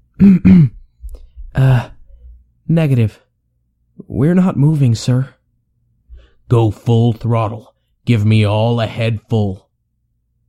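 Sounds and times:
man on a naval ship clearing his throat: 0.1 - 0.9
speech: 0.2 - 0.8, 1.5 - 1.9, 2.7 - 3.2, 4.0 - 5.4, 6.5 - 9.6.

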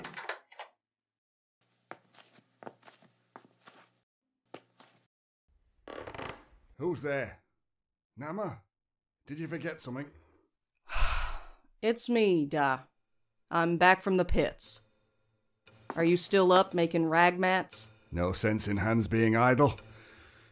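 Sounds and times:
door opening and shutting: 5.9 - 6.6
speech: 6.8 - 7.4, 8.2 - 8.7, 9.3 - 10.2, 11.8 - 12.9, 13.5 - 14.9, 16.0 - 19.9.

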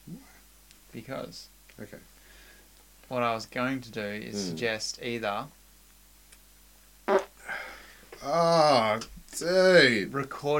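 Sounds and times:
speech: 1.0 - 2.2, 3.1 - 5.6, 8.2 - 10.5
short sharp fart with raspy trailing puff: 7.1 - 7.5.

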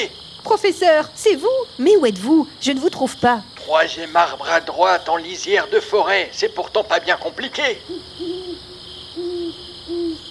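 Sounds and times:
speech: 0.0 - 8.4
constant high insect-like hiss in the night air: 0.0 - 10.2
tawny owl hooting at night: 5.4 - 10.2.

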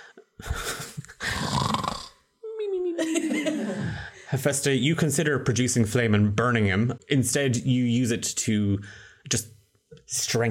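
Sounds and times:
person imitating snoring: 1.2 - 2.2
laughter: 2.9 - 4.3
speech: 4.3 - 10.5.

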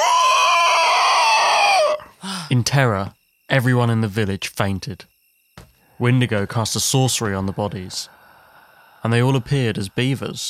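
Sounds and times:
blood-curdling yell: 0.0 - 2.1
speech: 2.6 - 5.1, 6.0 - 8.2, 9.0 - 10.4.

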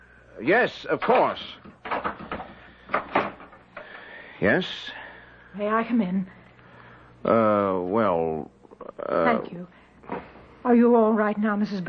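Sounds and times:
speech: 0.4 - 1.7, 4.4 - 6.4, 7.2 - 9.8, 10.6 - 11.8
door being opened: 1.0 - 3.6.

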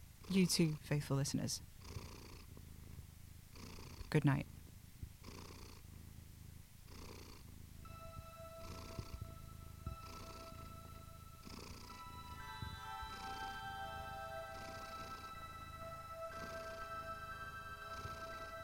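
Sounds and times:
cat purring: 0.2 - 18.6
speech: 0.3 - 1.7, 4.1 - 4.5
faint sustained tones: 7.8 - 18.6.

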